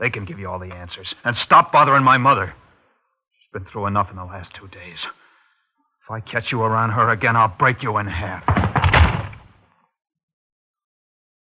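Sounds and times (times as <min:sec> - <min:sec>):
speech: 0:00.0 - 0:02.6, 0:03.5 - 0:05.2, 0:06.1 - 0:08.6
heavy door slammed shut: 0:08.4 - 0:09.5.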